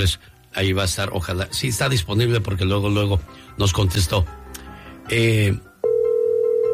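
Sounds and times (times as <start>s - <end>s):
speech: 0.0s - 4.4s, 5.1s - 5.7s
steady mid-pitched telephone tone while placing a call: 5.8s - 6.7s.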